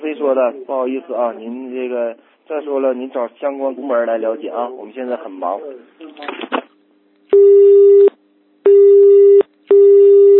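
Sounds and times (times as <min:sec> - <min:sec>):
speech: 0:00.2 - 0:06.6, 0:07.3 - 0:07.9
loud telephone busy tone: 0:08.7 - 0:10.3.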